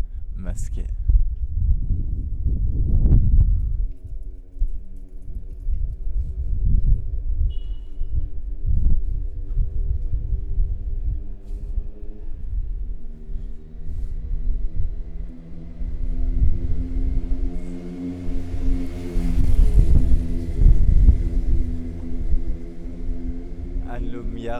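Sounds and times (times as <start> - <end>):
street ambience: 0.0 - 24.5
speech: 0.5 - 1.1
car engine rumbling pulling out of an inner courtyard: 12.0 - 24.5.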